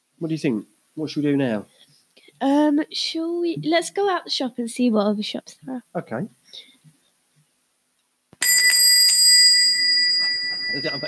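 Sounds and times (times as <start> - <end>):
speech: 0.2 - 1.8, 2.4 - 6.7, 10.7 - 11.0
loud bright metallic bell ringing: 8.4 - 11.0.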